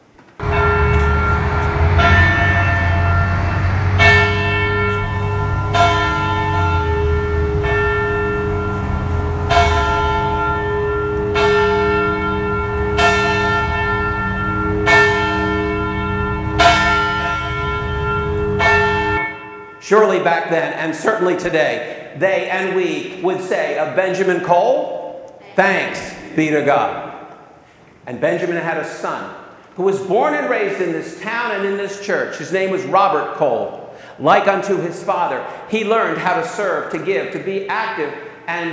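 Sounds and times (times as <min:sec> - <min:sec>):
church bell tolling in a steeple: 0:00.4 - 0:22.0
speech: 0:20.4 - 0:25.0, 0:25.6 - 0:27.0, 0:28.1 - 0:38.7.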